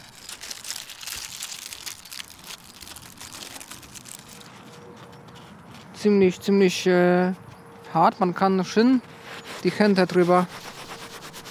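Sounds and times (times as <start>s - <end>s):
stiff papery seed pods with seeds crinkling in hands: 0.0s - 5.1s
speech: 6.0s - 10.7s.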